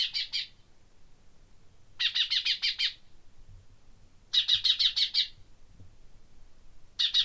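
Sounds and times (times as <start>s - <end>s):
common chaffinch calling in bursts of rapid high notes: 0.0s - 0.6s, 2.0s - 3.1s, 4.3s - 5.4s, 7.0s - 7.2s.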